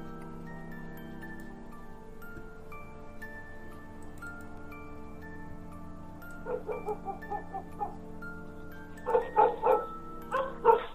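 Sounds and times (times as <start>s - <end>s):
dogs barking loudly in a village neighborhood: 6.4s - 8.0s, 9.1s - 10.9s.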